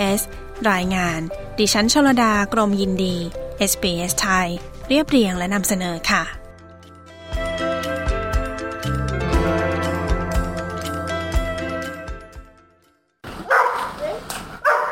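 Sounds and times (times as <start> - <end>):
speech: 0.0 - 6.4
instrumental music: 6.0 - 13.2
six-year-old Labrador assistance dog barking: 13.4 - 14.9.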